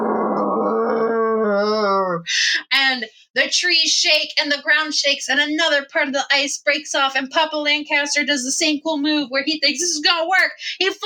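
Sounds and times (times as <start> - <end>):
abominable snowman monster roar on the ice: 0.0 - 2.1
speech: 3.0 - 11.0.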